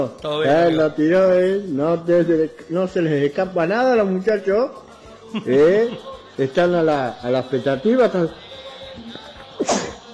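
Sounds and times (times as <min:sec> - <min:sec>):
speech: 0:00.0 - 0:09.8
sneeze: 0:09.6 - 0:10.0.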